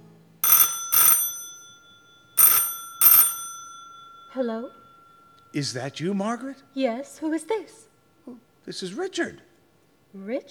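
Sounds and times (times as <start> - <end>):
telephone ringing after a number is dialed: 0.4 - 7.2
speech: 4.4 - 4.8, 5.5 - 9.5, 10.1 - 10.4.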